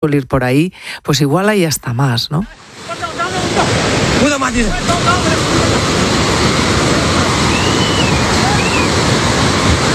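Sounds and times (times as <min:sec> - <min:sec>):
speech: 0:00.0 - 0:05.7
roar of rushing floodwater churning: 0:02.6 - 0:09.9.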